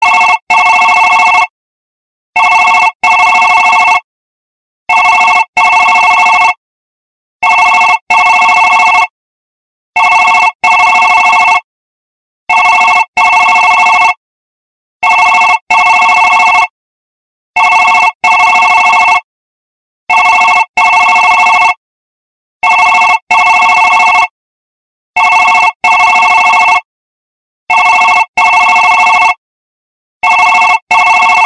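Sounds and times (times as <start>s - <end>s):
digital iPhone ringtone: 0.0s - 1.5s, 2.4s - 4.1s, 4.9s - 6.6s, 7.4s - 9.1s, 10.0s - 11.7s, 12.5s - 14.2s, 15.0s - 16.8s, 17.6s - 19.3s, 20.1s - 21.8s, 22.6s - 24.4s, 25.2s - 26.9s, 27.7s - 29.4s, 30.2s - 31.4s.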